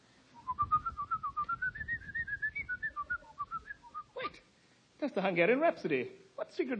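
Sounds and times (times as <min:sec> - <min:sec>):
person whistling a quick bouncy classical melody: 0:00.4 - 0:04.2
speech: 0:05.0 - 0:06.7.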